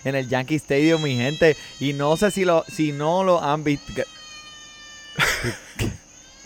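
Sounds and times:
speech: 0.0s - 4.2s, 5.4s - 6.0s
cat in heat yowling: 0.0s - 6.4s
laughter: 5.2s - 6.0s.

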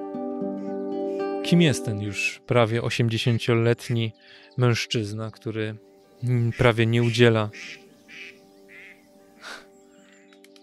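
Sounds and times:
birds squawking in a noisy squabble: 0.6s - 2.4s, 3.0s - 5.0s, 5.9s - 10.4s
speech: 1.4s - 8.2s.

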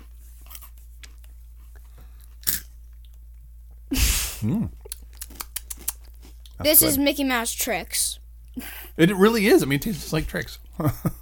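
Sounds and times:
sweet sugary cereal being chewed: 0.3s - 3.3s, 4.8s - 6.6s
speech: 3.9s - 4.8s, 6.6s - 11.1s
short vocal noise: 4.4s - 4.8s.

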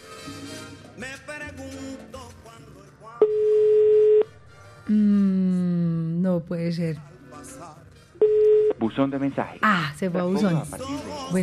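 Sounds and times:
quiet music: 0.0s - 11.4s
ringback tone on an outgoing telephone call: 3.2s - 4.3s, 8.2s - 8.8s
speech: 6.5s - 7.2s, 8.9s - 11.4s.

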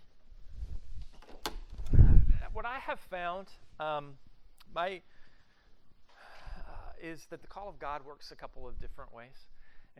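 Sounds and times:
door swinging shut with soft thud and click: 1.1s - 2.1s
speech: 2.7s - 5.1s, 7.0s - 9.9s.

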